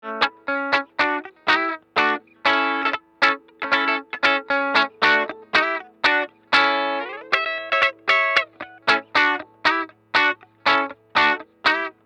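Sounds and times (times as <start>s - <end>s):
electric guitar: 0.0s - 12.0s.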